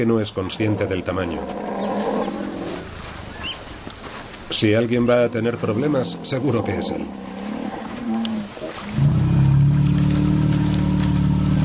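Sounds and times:
speech: 0.0s - 1.9s, 4.5s - 7.4s
faint outdoor noise: 0.0s - 11.6s
elephant rumble and bellow: 0.4s - 11.6s.

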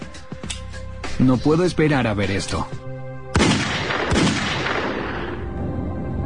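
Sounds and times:
speech: 1.2s - 2.9s
staged gunshots in a film shootout between a gang and police: 3.3s - 5.4s.

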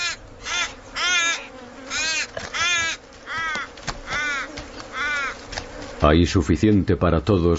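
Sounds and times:
crows cawing in Australia competing with eagles over carrion: 0.0s - 5.7s
speech: 6.0s - 7.5s.

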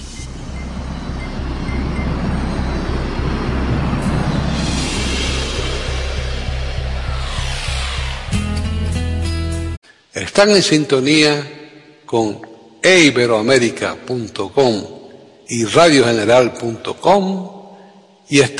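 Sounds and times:
metro train tonal motor whine: 0.0s - 8.6s
orange line metro train riding between stations: 0.0s - 9.2s
speech: 10.4s - 17.6s, 18.3s - 18.5s.

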